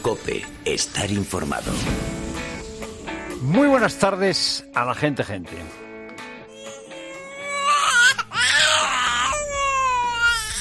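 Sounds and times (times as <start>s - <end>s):
speech: 0.0s - 2.5s, 3.4s - 5.9s
newborn baby crying: 6.5s - 10.5s.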